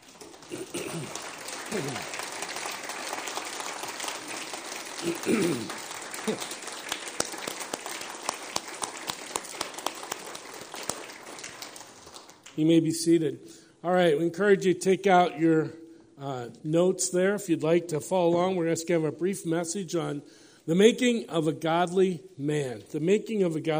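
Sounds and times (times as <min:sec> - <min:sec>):
large audience applauding: 0:00.0 - 0:12.7
speech: 0:00.5 - 0:02.1, 0:05.2 - 0:06.6, 0:12.6 - 0:23.7.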